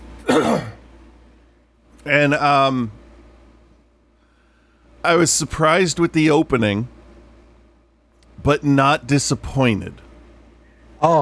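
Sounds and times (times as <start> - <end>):
throat clearing: 0.2 - 0.8
speech: 0.3 - 0.7, 2.0 - 3.0, 5.0 - 7.0, 8.4 - 10.0, 11.0 - 11.2.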